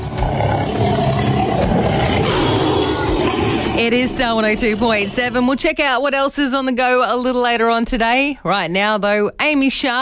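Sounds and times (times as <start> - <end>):
deep rumbling tiger roar: 0.0 - 5.6
speech: 3.9 - 10.0.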